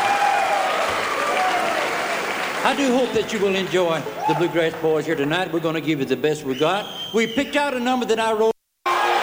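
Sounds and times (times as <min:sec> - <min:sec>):
bluegrass concert audience applause: 0:00.0 - 0:04.7
speech: 0:02.6 - 0:08.5.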